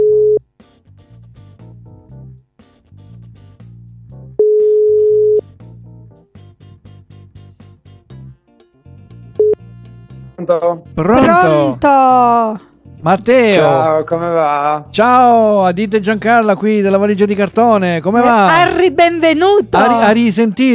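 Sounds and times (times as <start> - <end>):
telephone line tone bursts as a call is placed: 0.0 - 0.4, 4.4 - 5.4
speech: 10.5 - 20.7.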